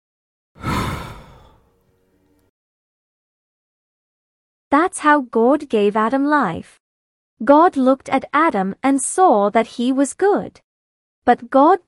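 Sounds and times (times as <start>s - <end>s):
deep breath in and out: 0.6s - 1.7s
speech: 4.7s - 6.8s, 7.4s - 10.6s, 11.2s - 11.8s.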